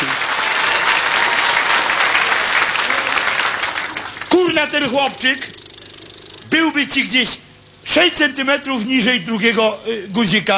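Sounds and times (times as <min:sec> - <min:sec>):
crowd applause: 0:00.0 - 0:04.3
speech: 0:04.6 - 0:05.6, 0:06.5 - 0:10.5.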